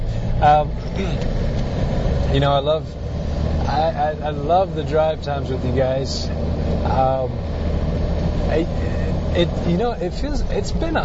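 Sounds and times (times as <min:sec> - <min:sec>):
rush hour road traffic and vehicle engines rumbling: 0:00.0 - 0:11.0
speech: 0:00.4 - 0:01.4, 0:02.3 - 0:07.6, 0:08.5 - 0:11.0.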